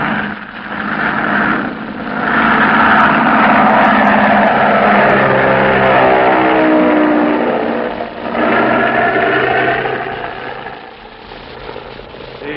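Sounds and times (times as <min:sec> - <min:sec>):
automobile procession engines droning on the highway to Death Valley: 0:00.0 - 0:12.5.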